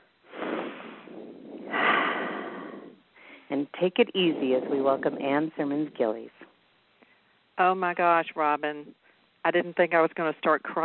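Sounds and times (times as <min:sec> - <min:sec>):
big deep breath drawn and let out: 0:00.0 - 0:03.5
speech: 0:03.5 - 0:06.4, 0:07.6 - 0:10.8.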